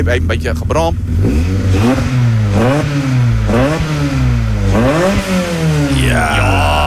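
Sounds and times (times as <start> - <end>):
speech: 0.0 - 3.7
200-horsepower engine revving under throttle: 0.0 - 6.8.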